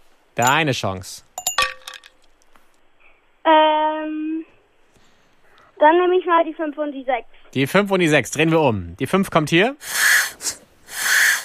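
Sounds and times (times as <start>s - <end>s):
speech: 0.4s - 1.3s, 3.5s - 4.2s, 5.8s - 10.6s
ice cubes clinking against a glass: 1.4s - 2.3s.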